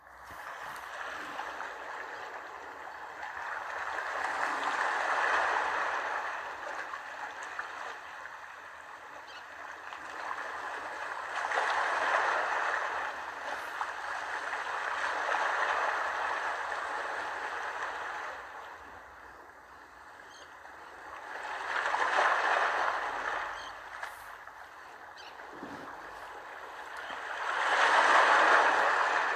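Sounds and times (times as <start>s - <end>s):
gentle waves washing back and forth on beach: 0.2s - 9.0s, 9.7s - 19.2s, 20.9s - 29.3s.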